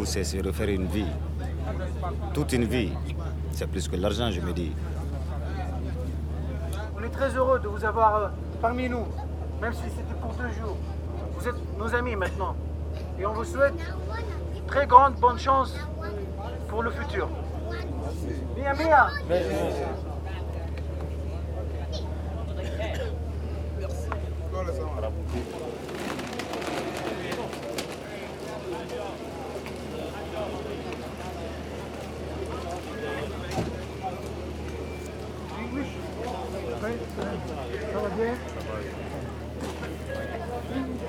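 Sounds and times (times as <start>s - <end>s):
speech: 0.0s - 5.0s, 7.0s - 17.4s, 18.0s - 20.1s
low boat engine drone: 0.0s - 12.0s, 19.5s - 41.0s
indistinct chatter on a boat deck: 0.0s - 41.0s
scattered clatter on a boat deck: 25.4s - 28.2s.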